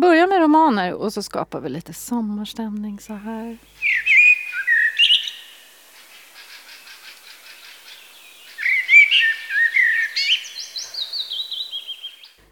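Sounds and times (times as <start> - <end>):
speech: 0.0 - 4.0
common blackbird singing: 3.1 - 12.4.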